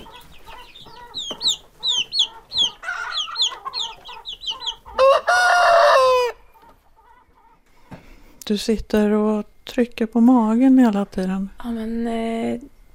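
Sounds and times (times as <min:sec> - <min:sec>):
chickens clucking: 0:00.0 - 0:08.3
rooster crowing: 0:02.8 - 0:06.6
speech: 0:08.5 - 0:12.7.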